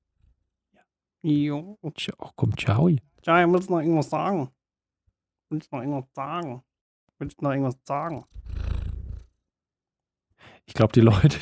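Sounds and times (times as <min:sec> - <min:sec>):
speech: 0:01.2 - 0:04.6, 0:05.5 - 0:08.5, 0:10.7 - 0:11.3
cat purring against the microphone: 0:08.1 - 0:09.4.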